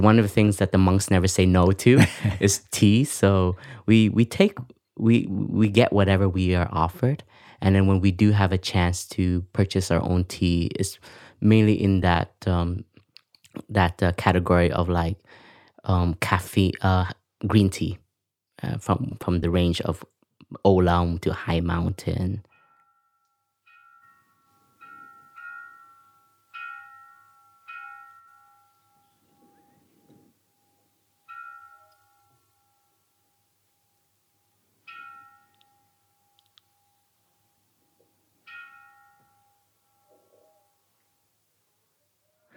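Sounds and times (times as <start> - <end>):
speech: 0.0 - 12.9, 13.6 - 18.0, 18.6 - 22.5
monastery bell ringing softly: 22.6 - 41.3.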